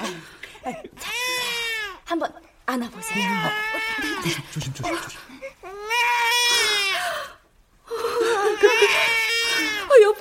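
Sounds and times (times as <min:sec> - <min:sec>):
baby crying: 0:01.0 - 0:02.0, 0:03.0 - 0:04.5, 0:05.6 - 0:07.4, 0:08.2 - 0:10.1
speech: 0:02.2 - 0:05.3.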